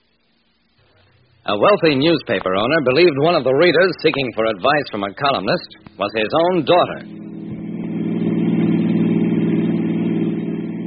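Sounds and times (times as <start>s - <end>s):
speech: 1.4s - 7.2s
car engine rumbling while driving along the road to Midvale: 3.0s - 10.8s.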